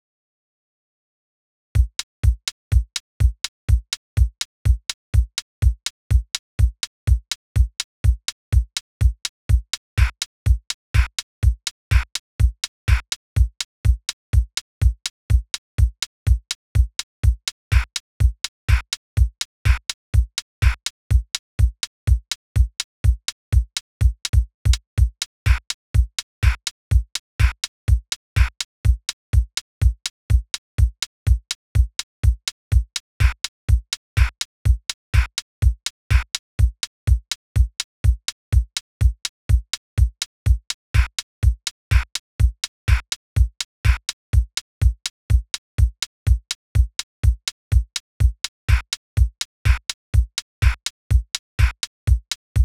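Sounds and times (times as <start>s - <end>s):
kick drum: 1.8s - 52.6s
snare drum: 50.6s - 50.9s, 51.6s - 51.8s.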